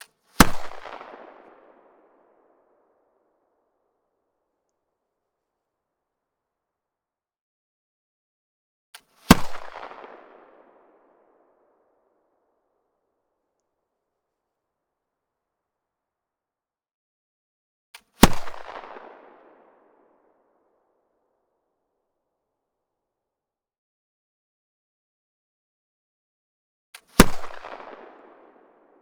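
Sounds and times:
rifled flintlock pistol M1820 firing: 0.4s - 1.9s, 9.3s - 10.8s, 18.2s - 19.2s, 27.2s - 28.6s.

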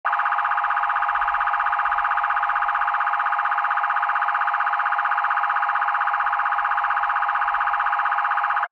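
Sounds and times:
siren in South Africa: 0.0s - 8.7s.

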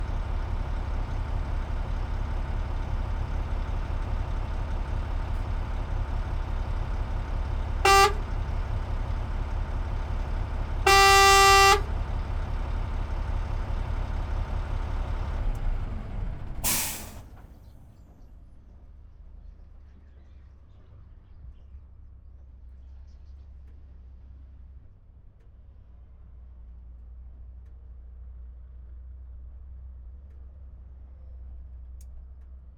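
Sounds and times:
Volvo A30E dump truck engine idling and shutting down: 0.0s - 17.4s
Volvo A30E dump truck exterior horn: 4.9s - 13.4s.

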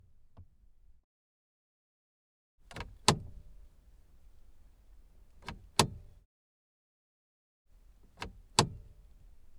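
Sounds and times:
2005 Aston Martin DB9 gear selector wheel: 2.7s - 6.2s, 7.7s - 9.5s.

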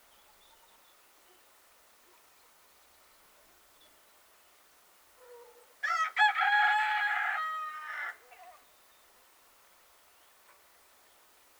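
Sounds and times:
rooster crowing cock-a-doodle-doo: 5.8s - 8.2s.

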